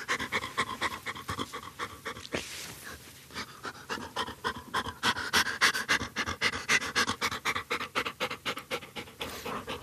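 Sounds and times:
mink detection dog panting rapidly: 0.0 - 9.8
rustle: 2.2 - 3.3.

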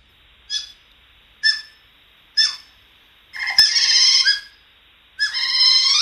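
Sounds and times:
otter calling with whistling chirps and squeals: 0.5 - 0.8, 2.4 - 4.6, 5.2 - 6.0.

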